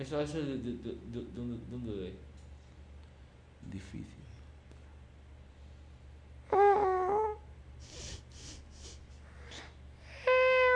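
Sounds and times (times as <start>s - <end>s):
speech: 0.0s - 2.3s, 3.6s - 4.4s
person imitating a cat meowing: 6.5s - 7.4s, 10.2s - 10.7s
person making breathy puffs and sniffs: 7.8s - 9.8s.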